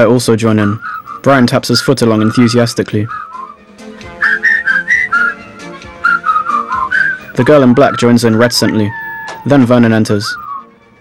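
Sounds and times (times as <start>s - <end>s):
speech: 0.0s - 3.4s, 7.4s - 10.4s
people whistling a tune: 0.6s - 10.7s.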